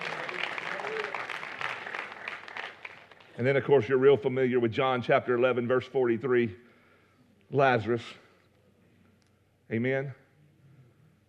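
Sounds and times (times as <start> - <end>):
soft polite golf clap: 0.0 - 3.4
speech: 3.4 - 6.6, 7.5 - 8.2, 9.7 - 10.2.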